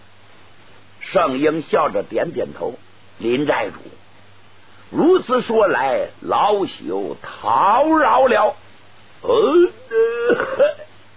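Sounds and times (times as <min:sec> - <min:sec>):
speech: 0:01.1 - 0:04.0, 0:04.9 - 0:08.6, 0:09.2 - 0:10.8
man imitating throat-clearing cough: 0:09.2 - 0:10.9.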